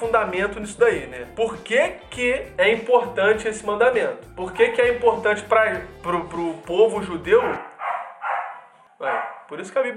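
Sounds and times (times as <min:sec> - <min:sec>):
speech: 0:00.0 - 0:07.7, 0:09.0 - 0:09.9
person imitating dog barks: 0:04.5 - 0:05.2, 0:09.0 - 0:09.5.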